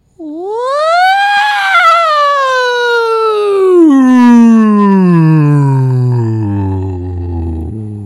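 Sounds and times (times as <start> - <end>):
single voice imitating a siren on a sustained vowel as a vocal exercise: 0.2 - 8.0.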